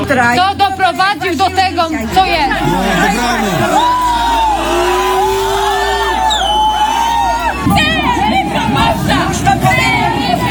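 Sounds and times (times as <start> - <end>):
speech: 0.1 - 5.0
large crowd shouting and arguing outside a church in protest: 2.2 - 10.4
individual raised cries: 2.6 - 8.3.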